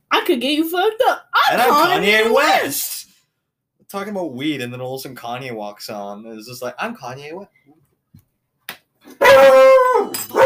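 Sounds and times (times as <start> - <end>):
speech: 0.3 - 3.0, 3.9 - 7.8
dog barking with whining yelp: 9.1 - 10.4.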